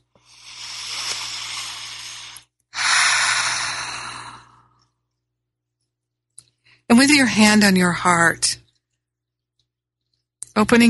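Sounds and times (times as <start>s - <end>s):
deep breath in and out during a guided gratitude exercise: 0.1s - 5.0s
speech: 7.1s - 8.6s, 10.6s - 10.8s.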